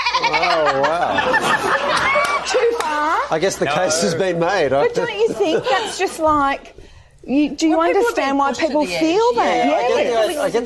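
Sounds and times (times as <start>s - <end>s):
sheep bleating: 0.0s - 0.7s
laughter: 0.0s - 6.3s
speech: 0.2s - 10.6s.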